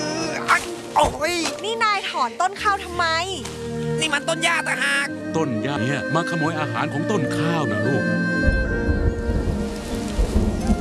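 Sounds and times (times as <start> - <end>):
speech: 1.0 - 8.7
distant thunder rumbles: 8.4 - 10.7
steady rain: 8.4 - 10.7.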